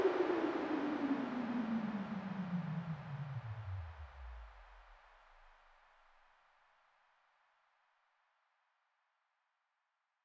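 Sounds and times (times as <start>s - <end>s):
analog noise with slow filter sweep: 0.2s - 5.5s.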